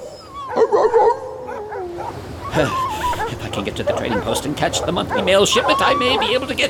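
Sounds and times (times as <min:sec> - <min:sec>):
sled dogs barking and yipping: 0:00.0 - 0:06.6
laughter: 0:02.5 - 0:06.6
speech: 0:02.6 - 0:02.8, 0:03.5 - 0:06.6.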